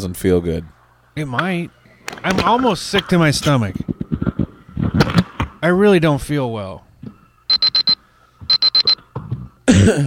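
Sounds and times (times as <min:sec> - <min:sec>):
speech: 0:00.0 - 0:03.9, 0:05.0 - 0:06.9, 0:09.8 - 0:10.0
countdown timer alarm beeping: 0:07.5 - 0:09.0.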